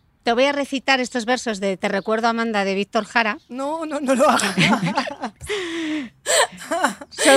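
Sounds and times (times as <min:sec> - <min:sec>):
speech: 0:00.2 - 0:07.3
laughter: 0:04.2 - 0:07.3
person crying with wails and sobs: 0:04.4 - 0:07.3
sharp emotional gasping breath: 0:05.4 - 0:06.6.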